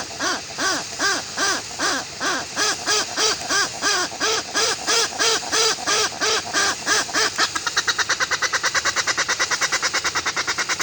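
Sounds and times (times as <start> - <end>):
Westland petrel uttering loud even arched croaking notes: 0.0 - 10.8.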